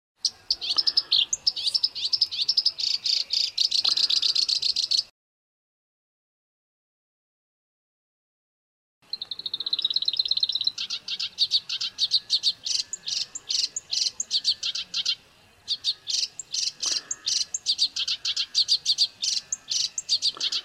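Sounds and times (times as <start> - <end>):
Black-browed reed warbler singing: 0.2 - 5.1, 9.0 - 20.6.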